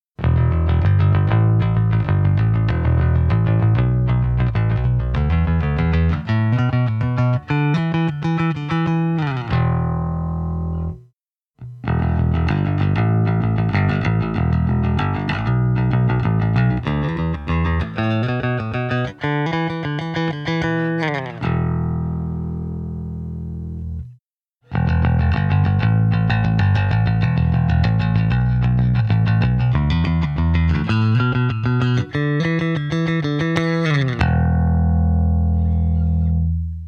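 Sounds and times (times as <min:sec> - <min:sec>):
jazz bass guitar picked: 0:00.2 - 0:36.8.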